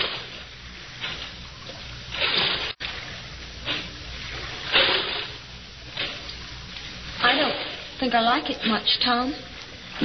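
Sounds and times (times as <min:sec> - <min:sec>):
boatman's oars rowing through water in the Blue Grotto: 0:00.0 - 0:08.0
low watery wash: 0:00.0 - 0:10.0
speech: 0:08.0 - 0:10.0.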